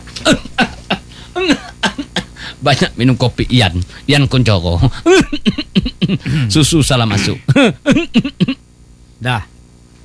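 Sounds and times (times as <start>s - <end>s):
speech: 0.2s - 0.5s, 2.6s - 8.6s, 9.2s - 9.5s
man laughing and coughing: 0.2s - 2.4s, 4.8s - 8.7s.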